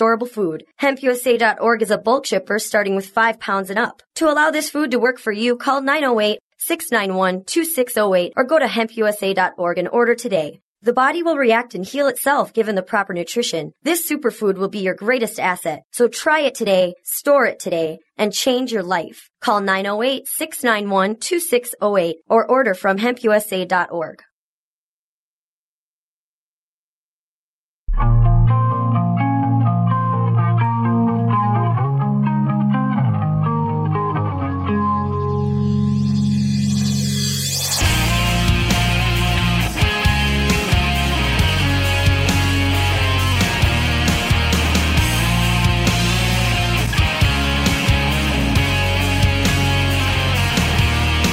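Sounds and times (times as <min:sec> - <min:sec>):
speech: 0:00.0 - 0:24.3
mellow effects-laden guitar with sustained chords: 0:27.9 - 0:51.3
loud dense distorted instrumental band music: 0:37.0 - 0:51.3
steady drums: 0:37.7 - 0:51.3.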